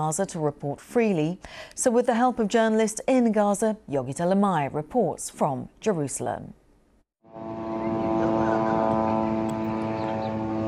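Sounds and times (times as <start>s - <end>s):
speech: 0.0s - 6.6s
military drones flying overhead in Gaza: 7.2s - 10.6s.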